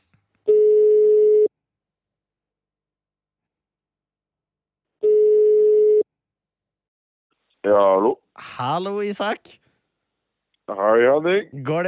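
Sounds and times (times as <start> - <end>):
electronic ringback tones of an outgoing phone call: 0.5 - 1.5, 5.0 - 6.0
speech: 7.7 - 9.6, 10.7 - 11.8.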